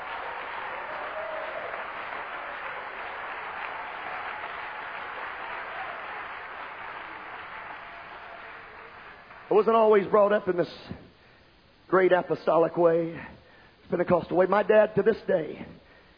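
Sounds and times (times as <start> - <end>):
audience clapping at a Pentecostal church service: 0.0 - 10.2
speech: 9.5 - 11.1, 11.9 - 15.8.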